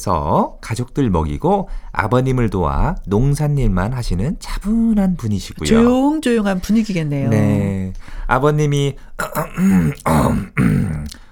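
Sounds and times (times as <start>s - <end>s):
speech: 0.0s - 11.2s
man clearing his throat: 9.2s - 11.1s.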